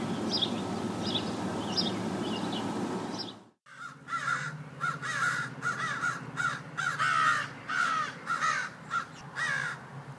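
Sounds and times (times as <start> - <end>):
motorcycle passing: 0.0 - 10.1
crows cawing while mobbing a hawk in a pine tree: 3.7 - 10.1.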